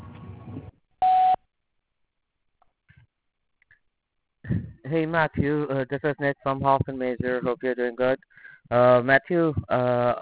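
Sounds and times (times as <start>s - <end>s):
voicemail beep after a church's recorded phone greeting: 1.0s - 1.4s
speech: 4.9s - 10.2s.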